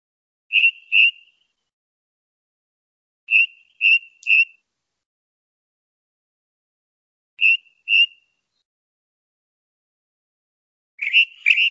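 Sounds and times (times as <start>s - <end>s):
male ring ouzel singing piping notes: 0.5s - 1.5s, 3.3s - 4.6s, 7.4s - 8.3s, 11.0s - 11.7s.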